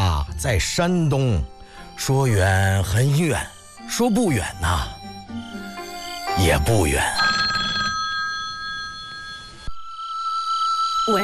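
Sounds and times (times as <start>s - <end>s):
speech: 0.4s - 5.0s, 6.4s - 7.3s, 11.1s - 11.2s
telephone ringing with electronic trill: 5.0s - 11.2s.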